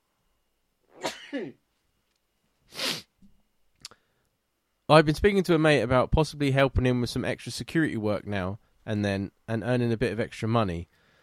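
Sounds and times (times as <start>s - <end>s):
person sneezing with hay fever: 0.9s - 1.6s, 2.7s - 3.1s
speech: 1.3s - 1.6s, 4.9s - 11.0s
sharp snort: 2.7s - 3.1s.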